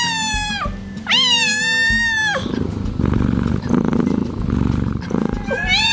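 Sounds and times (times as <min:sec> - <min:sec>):
domestic cat meowing: 0:00.0 - 0:02.6, 0:05.2 - 0:05.9
domestic cat purring: 0:00.0 - 0:05.9.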